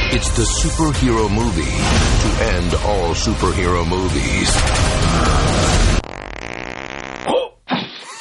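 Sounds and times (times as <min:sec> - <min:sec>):
speech: 0:00.1 - 0:05.9
fart: 0:05.0 - 0:08.0.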